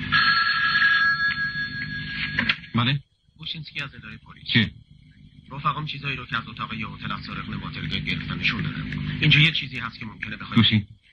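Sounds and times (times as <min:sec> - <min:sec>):
telephone ringing with a steady electronic trill: 0:00.0 - 0:02.8
speech: 0:02.8 - 0:04.8, 0:05.5 - 0:11.1.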